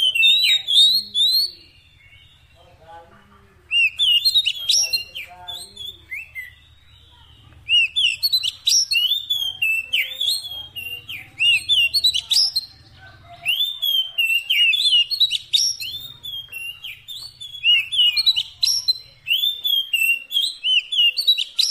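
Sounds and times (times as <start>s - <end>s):
Oriental magpie-robin singing sweet whistles and chattering notes: 0.0s - 21.7s.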